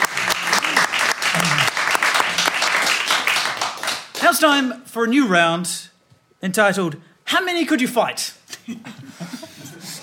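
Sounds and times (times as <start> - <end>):
faint cheer: 0.0 - 3.1
audience applause: 0.0 - 4.2
speech: 4.3 - 9.4
laughter: 8.5 - 10.0.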